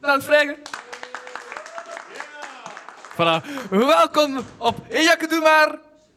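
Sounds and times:
speech: 0.1 - 0.8, 3.2 - 5.9
scattered hand claps from an audience at a live show: 0.6 - 4.6.

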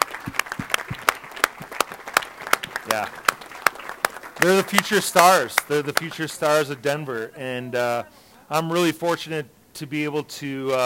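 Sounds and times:
small audience clapping: 0.0 - 7.2
speech: 2.9 - 3.3, 4.4 - 10.8.

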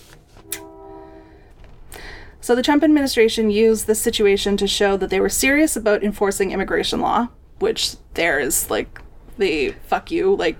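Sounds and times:
passing train horn-like tone: 0.4 - 1.6
speech: 2.4 - 10.5.

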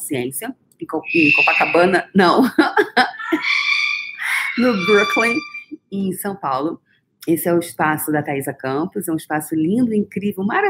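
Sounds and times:
speech: 0.1 - 3.8, 4.6 - 10.6
parrot squawking: 1.0 - 2.2, 3.0 - 5.8
laughter: 2.5 - 5.4.

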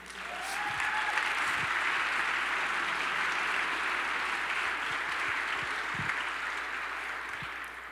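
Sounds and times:
audience applauding: 0.0 - 7.9.

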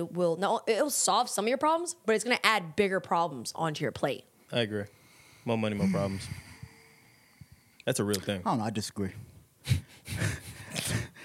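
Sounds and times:
speech: 0.0 - 6.4, 7.9 - 11.0
long dramatic gasp: 5.0 - 7.7.

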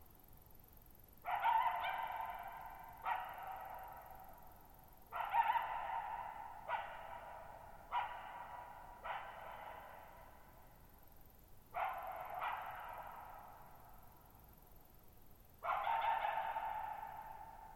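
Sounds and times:
lone wild coyote barking at night in high mountain meadow: 1.2 - 4.5, 5.1 - 10.7, 11.7 - 14.2, 15.6 - 17.7.

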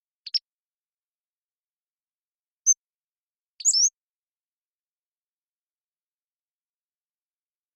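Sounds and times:
Pacific-slope flycatcher song with double notes and slurred whistles: 0.2 - 0.4, 3.6 - 4.0.

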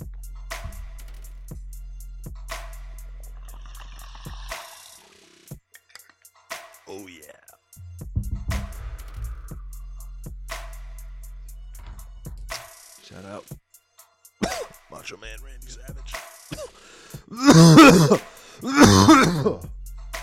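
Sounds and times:
harsh coughing fits: 14.4 - 14.8, 16.5 - 19.7
person clearing throat: 14.4 - 14.8, 16.5 - 19.7.

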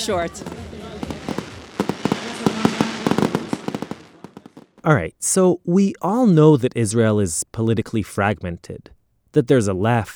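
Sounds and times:
speech: 0.0 - 0.6, 4.8 - 10.1
fireworks exploding: 0.0 - 5.0.

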